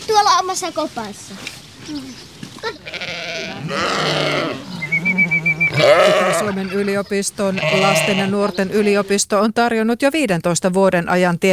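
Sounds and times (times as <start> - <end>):
speech: 0.5 - 4.7, 5.8 - 11.5
pig grunting at animal park feeding: 1.8 - 9.2
lamb bleating at animal park feeding: 2.6 - 9.2.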